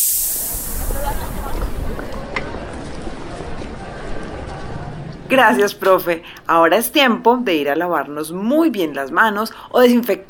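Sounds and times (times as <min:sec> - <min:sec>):
spaceship hatch doors opening with a hiss after landing: 0:00.0 - 0:01.9
speech: 0:05.3 - 0:10.2.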